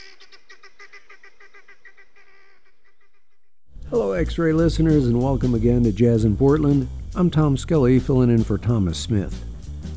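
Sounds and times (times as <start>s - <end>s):
helmeted guinea fowl squawking calls: 0.0s - 3.5s
speech: 3.9s - 9.5s.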